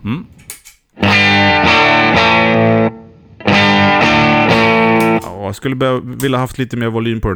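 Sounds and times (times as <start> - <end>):
speech: 0.0 - 0.5, 5.6 - 7.3
electric guitar strummed chords through a clean boost pedal: 1.0 - 5.4.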